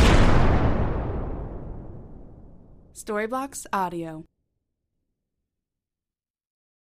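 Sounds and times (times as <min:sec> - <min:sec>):
booming explosion with deep rumble and crackle: 0:00.0 - 0:03.0
speech: 0:03.0 - 0:04.3.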